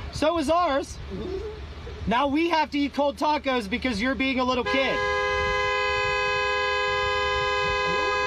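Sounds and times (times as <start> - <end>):
speech: 0.2 - 5.1
car horn honking: 4.5 - 8.2.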